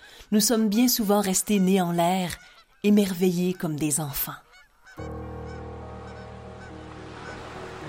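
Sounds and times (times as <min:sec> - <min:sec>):
speech: 0:00.3 - 0:04.4
flock of common cranes trumpeting in flight overhead: 0:04.4 - 0:07.8.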